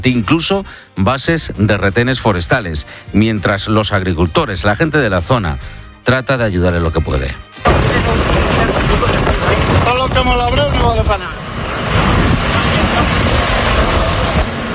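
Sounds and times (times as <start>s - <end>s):
speech: 0.0s - 11.4s
column of tractors advancing with engines rumbling: 7.6s - 14.7s
wind buffeting: 7.6s - 14.7s.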